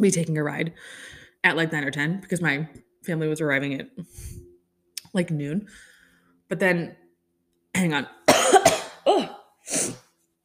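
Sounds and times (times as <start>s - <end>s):
speech: 0.0s - 4.4s, 5.1s - 5.9s, 6.5s - 7.0s, 7.7s - 10.0s
person coughing: 8.3s - 10.0s.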